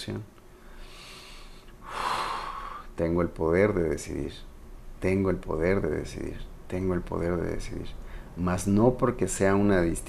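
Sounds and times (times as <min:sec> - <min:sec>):
speech: 0:00.0 - 0:00.4, 0:03.0 - 0:10.0
deep inhalation: 0:00.6 - 0:02.9.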